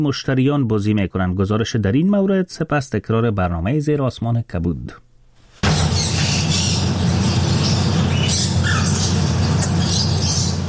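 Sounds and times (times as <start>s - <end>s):
speech: 0.0s - 5.0s
canaries and talking parrots squawking and chirping in a tea house in Bangkok Thailand: 5.6s - 10.6s.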